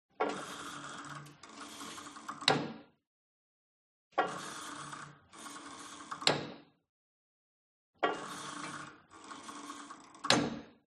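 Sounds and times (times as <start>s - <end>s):
old gym cable machine pull and soft drop: 0.2s - 2.9s, 4.2s - 6.6s, 8.0s - 10.8s.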